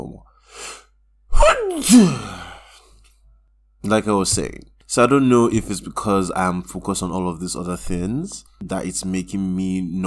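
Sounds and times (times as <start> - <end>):
person sneezing: 0.6 - 2.8
speech: 1.8 - 2.3, 3.8 - 10.0.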